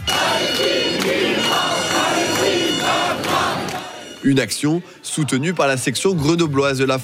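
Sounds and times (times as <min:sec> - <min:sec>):
crowd of protesters chanting slogans in unison: 0:00.0 - 0:06.4
speech: 0:04.2 - 0:07.0.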